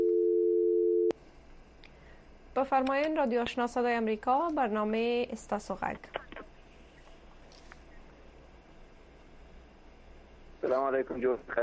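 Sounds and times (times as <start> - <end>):
telephone line tone while a call connects: 0.0 - 1.1
speech: 2.6 - 6.3, 10.7 - 11.6.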